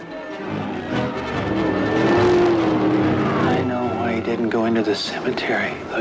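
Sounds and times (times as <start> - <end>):
car engine revving: 0.3 - 6.0
speech: 4.6 - 6.0.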